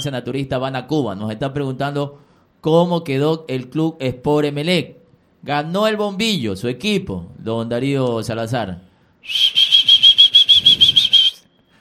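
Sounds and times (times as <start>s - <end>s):
speech: 0.0s - 9.6s
trilling whistle: 9.2s - 11.7s.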